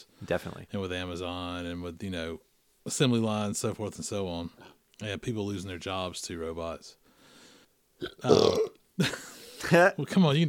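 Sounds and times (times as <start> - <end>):
speech: 0.0 - 7.0, 8.0 - 10.4
loud burp with a rough throaty rumble: 8.0 - 8.8.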